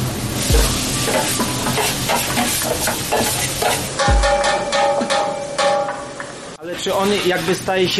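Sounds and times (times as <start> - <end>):
onions sizzling in a hot pan: 0.0 - 4.6
utensil scraping a pan while stirring onions: 0.6 - 5.7
speech: 6.8 - 7.9.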